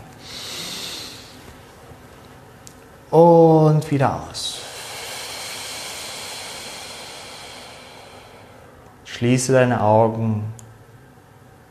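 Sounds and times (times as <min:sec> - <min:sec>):
deep drawn-out inhale through the nose: 0:00.2 - 0:01.4, 0:04.5 - 0:08.8
speech: 0:03.1 - 0:04.5, 0:09.2 - 0:10.6.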